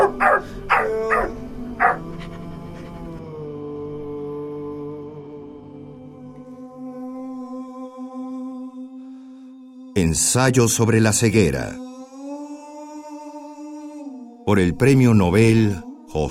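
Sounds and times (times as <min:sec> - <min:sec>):
dog barking: 0:00.0 - 0:02.1
long steady tonal drone: 0:00.0 - 0:06.6
speech: 0:10.0 - 0:11.8, 0:14.5 - 0:16.2.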